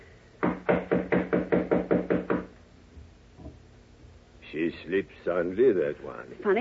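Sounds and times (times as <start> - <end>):
firm knocks on the wooden door of a suite: 0.4 - 2.5
speech: 4.7 - 6.6.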